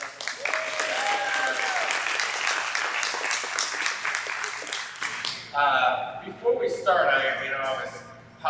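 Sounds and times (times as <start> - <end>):
room full of people applauding: 0.0 - 5.5
whistles and cheers from the audience: 0.3 - 2.4
speech: 5.6 - 8.4.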